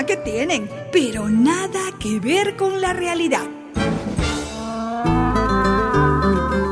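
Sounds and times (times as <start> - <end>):
speech: 0.1 - 3.6
donkey braying: 4.4 - 6.7.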